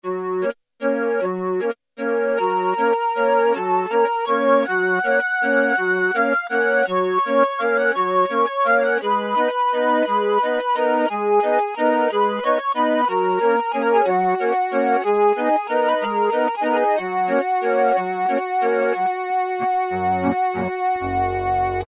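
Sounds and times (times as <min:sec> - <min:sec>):
calliope preset on a Roland Juno-106 synthesizer: 0:00.1 - 0:21.8.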